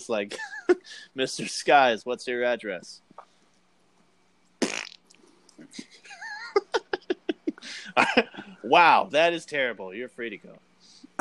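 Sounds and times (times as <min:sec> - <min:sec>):
speech: 0:00.0 - 0:03.0, 0:05.6 - 0:06.2, 0:07.7 - 0:10.6
short loud raspy fart noise: 0:04.6 - 0:05.1
rhythmic laughter: 0:05.8 - 0:08.5.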